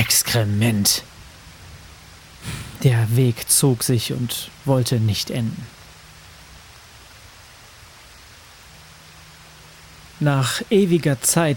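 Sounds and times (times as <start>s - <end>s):
heavy rain pouring down: 0.1s - 4.2s, 5.2s - 11.5s
speech: 0.3s - 1.1s, 2.4s - 5.8s, 10.2s - 11.5s
faint low hum: 2.4s - 3.1s.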